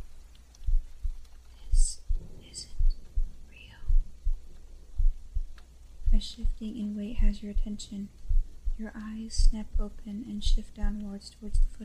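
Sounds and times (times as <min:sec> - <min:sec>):
heartbeat thudding in lub-dub pulses: 0:00.0 - 0:11.8
faint breathy whispers: 0:01.4 - 0:04.2
speech: 0:06.2 - 0:08.2, 0:08.8 - 0:11.8.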